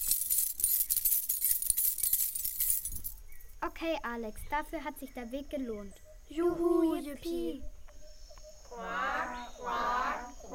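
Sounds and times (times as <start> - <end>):
many coins clinking in an opened treasure chest: 0.0 - 3.5
speech: 3.6 - 7.7, 8.8 - 10.5.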